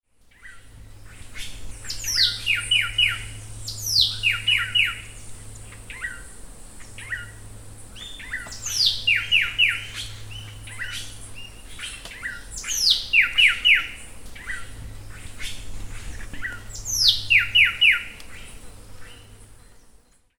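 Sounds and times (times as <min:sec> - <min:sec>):
Cantorchilus longirostris: 0:00.3 - 0:20.2.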